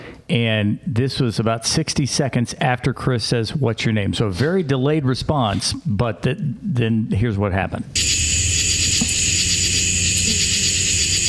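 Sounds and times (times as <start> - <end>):
speech: 0.3 - 8.3
bug wings buzzing as it flies by: 8.0 - 11.2.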